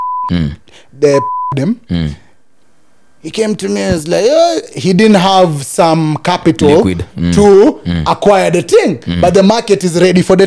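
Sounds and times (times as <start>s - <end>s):
mid-pitched censor beeps bleeping out a name: 0.0s - 0.5s, 1.1s - 1.7s
speech: 0.3s - 2.2s, 3.2s - 10.4s.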